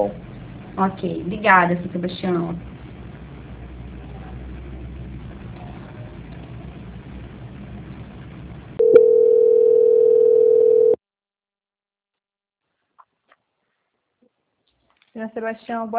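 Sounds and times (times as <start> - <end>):
low rumbling telephone line noise: 0.0 - 8.9
speech: 0.8 - 2.7, 15.4 - 15.9
telephone line tone during a call transfer: 8.8 - 11.0.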